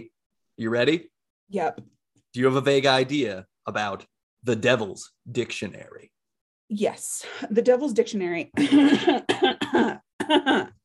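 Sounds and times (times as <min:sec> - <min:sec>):
speech: 0:00.0 - 0:10.8
person coughing harshly: 0:08.7 - 0:10.8.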